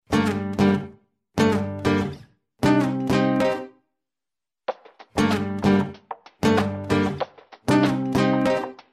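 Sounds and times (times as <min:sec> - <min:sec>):
guitar SMS message tone: 0:00.1 - 0:03.7, 0:05.2 - 0:08.8.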